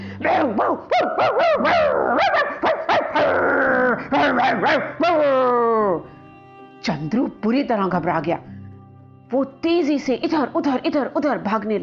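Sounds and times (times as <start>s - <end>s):
street dogs barking loudly in city streets at night: 0.2s - 5.2s
speech: 0.2s - 6.1s, 6.8s - 8.5s, 9.3s - 11.8s
street dogs yelping and whining: 0.8s - 5.5s.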